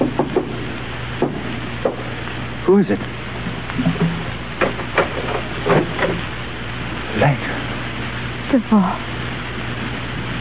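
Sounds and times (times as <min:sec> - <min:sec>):
knocking on a wooden door: 0:00.0 - 0:00.6, 0:01.2 - 0:02.0, 0:04.0 - 0:06.2
low steady hum: 0:00.0 - 0:10.3
speech: 0:02.7 - 0:03.2, 0:08.5 - 0:09.1.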